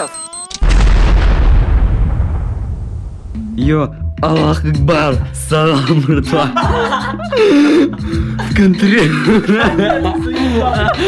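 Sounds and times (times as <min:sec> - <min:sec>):
speech: 0:00.0 - 0:00.2, 0:03.6 - 0:11.0
computer video game gunfire burst: 0:00.6 - 0:03.3
deep booming rumble: 0:00.6 - 0:04.2
laughter: 0:05.7 - 0:11.0.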